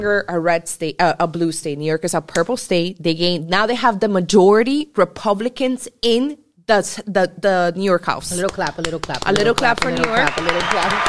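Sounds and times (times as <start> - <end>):
speech: 0.0 - 11.0
hand clapping: 8.3 - 11.0.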